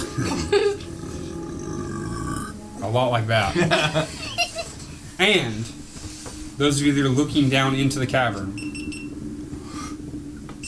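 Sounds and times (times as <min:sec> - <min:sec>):
laughter: 0:00.0 - 0:00.9, 0:03.4 - 0:04.9
person imitating a low throaty belch: 0:00.0 - 0:02.6
speech: 0:02.9 - 0:04.2, 0:05.2 - 0:05.8, 0:06.6 - 0:08.6.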